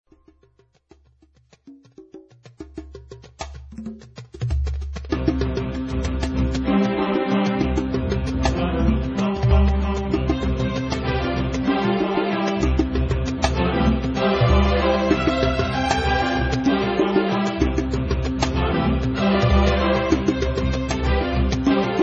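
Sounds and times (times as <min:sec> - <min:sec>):
eight-string instrument: 0:02.0 - 0:22.0.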